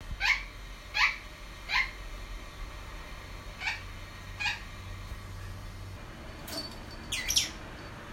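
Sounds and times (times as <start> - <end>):
rosy-faced lovebird giving high thin calls: 0.2 - 2.0, 3.6 - 4.7, 7.1 - 7.6
sun parakeet giving harsh begging squawks in the morning: 0.2 - 2.0, 3.6 - 4.7, 7.1 - 7.6.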